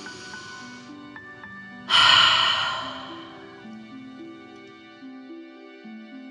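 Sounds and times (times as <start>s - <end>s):
strong breathy mouth exhale: 1.9s - 3.8s
faint steady tonal hum: 1.9s - 3.9s.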